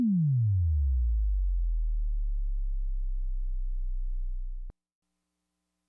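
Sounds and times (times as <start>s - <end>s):
Sol 4 tone sweeping down: 0.1s - 4.7s.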